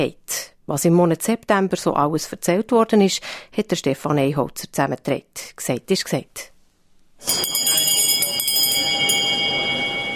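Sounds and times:
speech: 0.0 - 6.5, 7.2 - 7.8
loud electric parliament bell ringing: 7.2 - 10.1.

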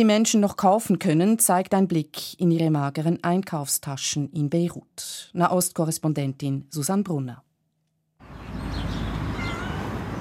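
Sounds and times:
speech: 0.0 - 7.5
cat meowing and begging: 9.2 - 10.1.

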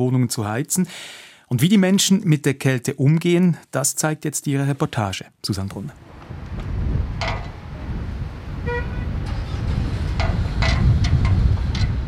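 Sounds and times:
speech: 0.0 - 7.5
gusty icy wind buffeting the microphone in city streets: 6.0 - 12.0
passing city street traffic: 6.0 - 12.0
sharp clattering bursts: 7.2 - 7.6, 9.2 - 12.0
short car horn toot: 8.6 - 9.4.

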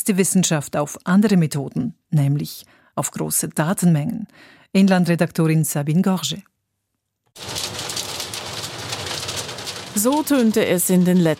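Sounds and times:
speech: 0.0 - 6.5, 7.4 - 7.8, 10.0 - 11.3
hail falling during a thunderstorm: 7.4 - 11.3.

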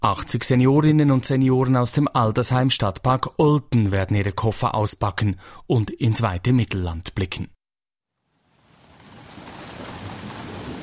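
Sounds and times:
speech: 0.0 - 7.6
steady rain downpour in a late-autumn thunderstorm: 8.4 - 10.8
deep low rumble of thunder: 8.9 - 10.8.

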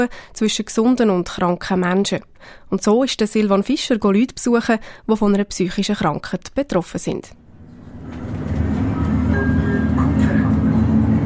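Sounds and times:
speech: 0.0 - 7.4
city bus engine rumble heard from inside, Lucerne: 7.4 - 11.2.

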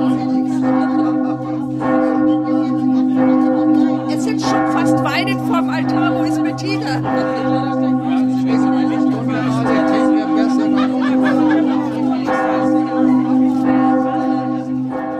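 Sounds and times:
faint crowd murmuring in the churchyard: 0.0 - 15.1
large church bell of Helgoland tolling at midnight for the national holiday: 0.0 - 15.1
soft laughter from people in the churchyard: 10.5 - 12.3.

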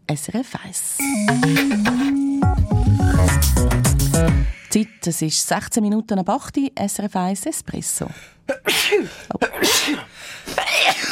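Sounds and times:
speech: 0.1 - 11.0
sneezing: 8.5 - 11.0.

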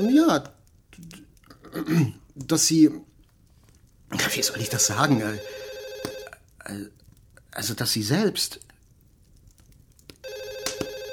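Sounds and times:
speech: 0.0 - 3.1, 4.1 - 5.6, 6.6 - 8.7
telephone ringing with a bright electronic tone: 4.4 - 6.4, 10.2 - 11.1.

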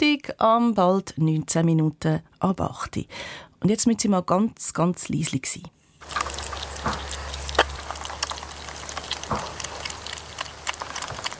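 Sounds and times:
speech: 0.0 - 7.0
European hedgehog smacking while eating: 6.0 - 11.3
low steady hum: 6.0 - 11.3.

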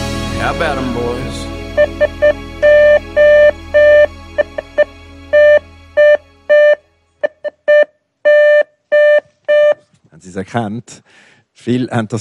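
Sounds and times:
speech: 0.5 - 2.5, 10.5 - 12.1
Morse code tone beeping SOS: 1.7 - 9.8.

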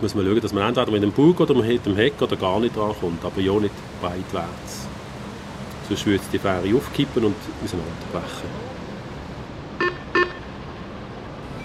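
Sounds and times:
speech: 0.0 - 5.0, 5.9 - 8.8
telephone ringing with electronic trills: 9.8 - 10.5.

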